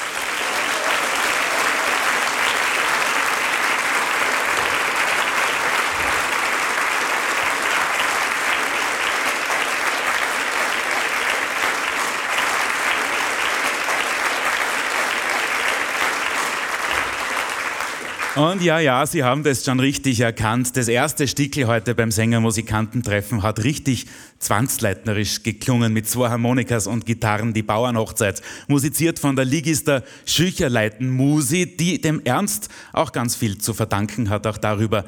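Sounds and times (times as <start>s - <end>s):
sustained applause from a large audience for a singing group: 0.0s - 19.0s
speech: 18.4s - 35.0s.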